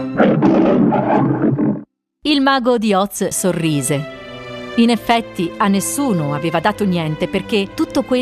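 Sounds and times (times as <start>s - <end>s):
lion roaring: 0.1s - 1.9s
speech: 0.2s - 4.2s, 4.8s - 8.2s.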